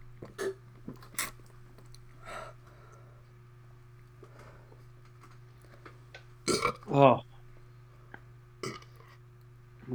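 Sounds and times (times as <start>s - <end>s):
steady low hum: 0.0s - 9.9s
burping: 6.5s - 7.0s, 8.6s - 9.0s
speech: 6.9s - 7.3s.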